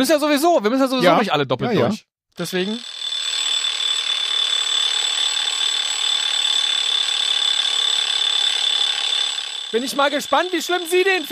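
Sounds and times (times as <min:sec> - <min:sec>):
speech: 0:00.0 - 0:03.0, 0:09.7 - 0:11.3
alarm clock ringing: 0:02.4 - 0:11.3.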